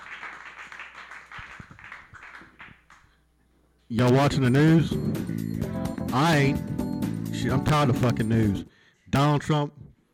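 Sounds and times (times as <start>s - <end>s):
crowd applauding: 0.0s - 3.1s
speech: 3.9s - 5.5s, 6.1s - 9.8s.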